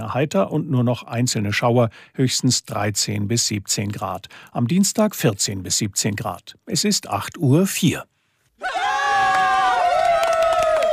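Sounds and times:
speech: 0:00.0 - 0:08.8
crowd cheering and whooping: 0:08.6 - 0:10.9
scattered clapping: 0:09.2 - 0:10.9.

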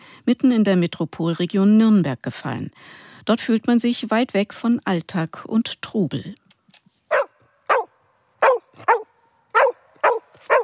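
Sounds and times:
speech: 0:00.3 - 0:06.4
herding dog barking excitedly: 0:07.1 - 0:10.6.

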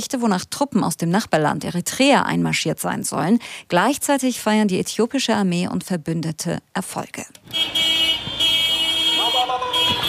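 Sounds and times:
speech: 0:00.0 - 0:07.9
pickup truck horns honking in a busy street: 0:07.4 - 0:10.0.

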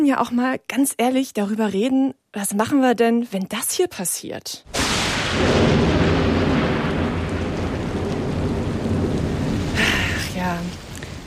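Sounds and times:
speech: 0:00.0 - 0:06.1
deep sustained roll of thunder: 0:04.7 - 0:11.2
steady heavy rain: 0:04.7 - 0:11.2.

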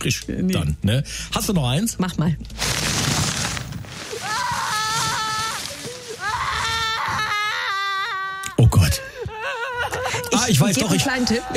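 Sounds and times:
speech: 0:00.0 - 0:03.3, 0:10.4 - 0:11.5
small child screaming and crying: 0:04.1 - 0:08.6
laughter: 0:05.3 - 0:11.5.

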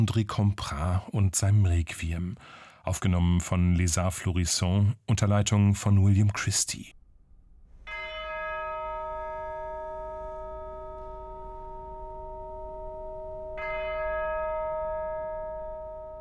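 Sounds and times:
speech: 0:00.0 - 0:07.0
deep church bell tolling: 0:07.7 - 0:16.1.

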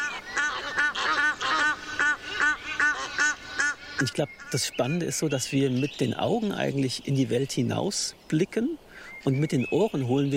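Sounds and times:
many geese honking in a church: 0:00.0 - 0:04.7
speech: 0:04.0 - 0:10.3.

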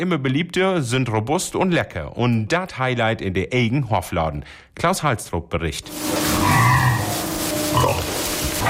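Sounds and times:
speech: 0:00.0 - 0:06.8
young woolly pigs snorting in a stall: 0:06.2 - 0:08.6
young woolly pigs grunting in a stall: 0:06.4 - 0:08.2.

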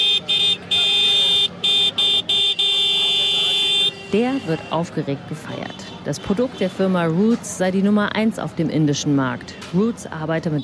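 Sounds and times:
vehicle horn honking: 0:00.0 - 0:04.8
speech: 0:04.1 - 0:10.6.

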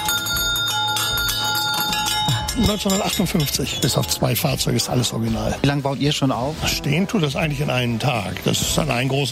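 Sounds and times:
original 1950s fire engine bell on a nostalgia carousel ringing: 0:00.0 - 0:04.4
speech: 0:02.6 - 0:09.3.

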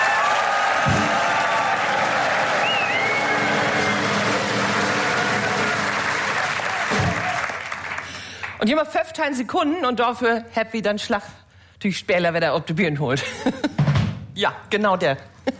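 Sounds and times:
crowd noise: 0:00.0 - 0:08.1
audience applause for the favourites: 0:00.0 - 0:08.6
faint whistles: 0:02.6 - 0:03.6
speech: 0:08.6 - 0:13.7, 0:14.4 - 0:15.5.

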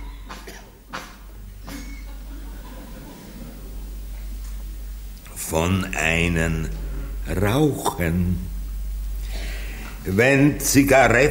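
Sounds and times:
person coughing harshly: 0:00.4 - 0:00.8
laughter: 0:01.7 - 0:04.4
speech: 0:05.5 - 0:08.5, 0:10.0 - 0:11.2.

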